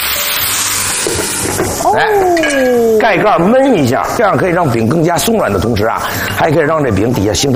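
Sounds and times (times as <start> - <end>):
water poured into a hot pan sizzling: 0.0 - 3.9
speech: 1.8 - 7.5.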